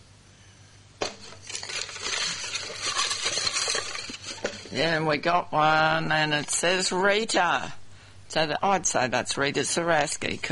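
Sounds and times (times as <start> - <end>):
bucket being stirred for a fruit-and-vegetable prize draw: 1.0 - 5.0
speech: 4.7 - 7.8, 8.4 - 10.5.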